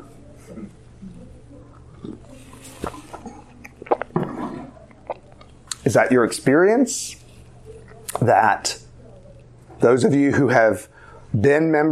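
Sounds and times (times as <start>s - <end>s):
low steady hum: 0.0s - 11.9s
person sipping coffee from a cup: 0.4s - 5.8s
speech: 5.9s - 7.2s, 8.2s - 8.8s, 9.8s - 11.9s.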